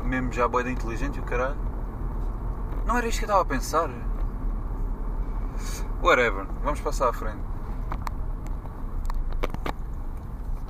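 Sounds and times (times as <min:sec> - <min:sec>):
road rumble inside a moving vehicle driving behind a bus: 0:00.0 - 0:10.6
speech: 0:00.2 - 0:01.7, 0:02.9 - 0:04.1, 0:05.6 - 0:08.0.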